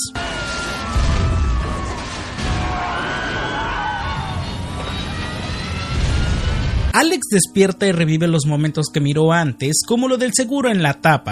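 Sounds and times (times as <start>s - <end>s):
deep rumbling booms of engines exploding: 0.6s - 7.0s
aircraft engine roaring and whining: 3.6s - 6.9s
speech: 7.0s - 11.3s.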